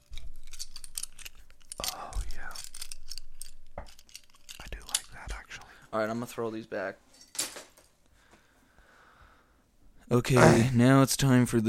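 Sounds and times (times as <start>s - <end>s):
plastic Lego bricks crunching and clattering in hands: 0.0s - 5.4s
speech: 5.9s - 7.1s, 10.1s - 11.6s.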